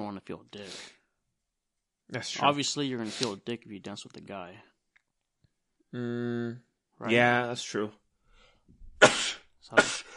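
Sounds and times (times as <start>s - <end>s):
speech: 0.1s - 1.0s, 2.1s - 4.7s, 5.9s - 8.0s, 9.0s - 10.1s
sneezes: 9.0s - 10.1s.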